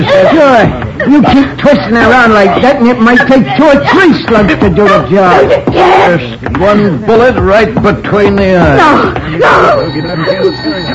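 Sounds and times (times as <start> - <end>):
laughter: 0.0 - 5.7
speech: 0.2 - 10.9
telephone ringing with buzzy electric tone: 9.4 - 10.9.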